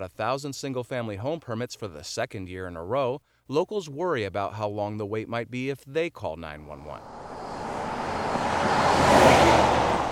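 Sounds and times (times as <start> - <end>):
speech: 0.0 - 7.2
cars speeding past a road intersection: 6.9 - 10.0
tires and engines whooshing on a busy road: 6.9 - 10.0.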